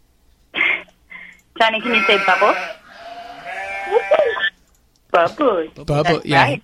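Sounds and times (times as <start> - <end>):
speech: 1.6 - 2.8, 5.2 - 6.6
person imitating a goat bleating: 1.8 - 4.4.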